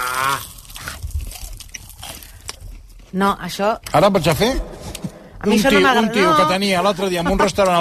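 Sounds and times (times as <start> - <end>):
wet chewing with sticky mouth smacks and small crunches: 0.0 - 3.2
speech: 3.1 - 4.7, 5.4 - 7.8.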